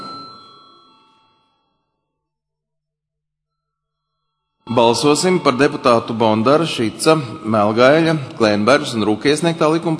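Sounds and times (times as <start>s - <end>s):
bell rung in a parliament chamber before a vote: 0.0s - 2.3s, 3.5s - 8.1s
speech: 4.8s - 9.9s.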